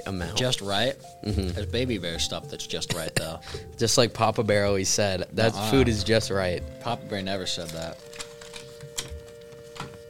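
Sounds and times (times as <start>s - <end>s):
speech: 0.0s - 8.2s
chocolate box rustling and crinkling: 7.4s - 10.0s.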